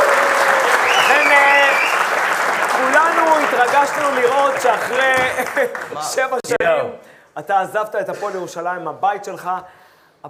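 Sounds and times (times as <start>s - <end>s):
crowd applauding: 0.0s - 6.2s
speech: 3.8s - 10.2s.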